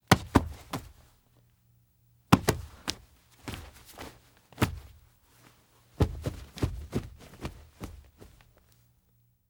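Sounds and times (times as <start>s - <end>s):
body bumps: 0.1s - 1.0s, 2.3s - 8.6s.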